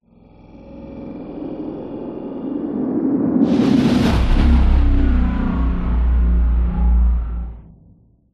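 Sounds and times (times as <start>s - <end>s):
resonating drone: 0.0s - 7.9s
horror growling sound design whoosh into heavy compressed whoosh: 0.0s - 8.0s.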